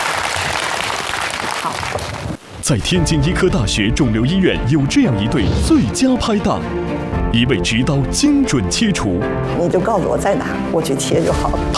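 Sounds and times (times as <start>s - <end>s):
audience applause welcoming two hospital doctors as guests: 0.0s - 2.4s
speech: 2.7s - 11.7s.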